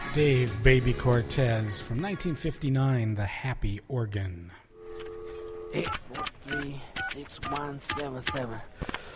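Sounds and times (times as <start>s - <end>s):
speech: 0.1s - 4.6s, 5.7s - 9.1s
telephone dial tone: 4.7s - 8.5s.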